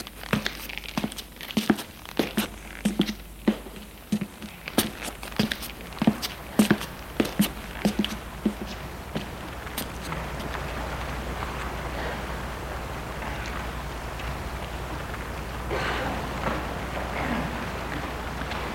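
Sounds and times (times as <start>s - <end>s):
soft scuffs of footsteps on stairs: 0.0s - 10.5s
footsteps descending the stairs of an apartment building: 0.0s - 18.7s.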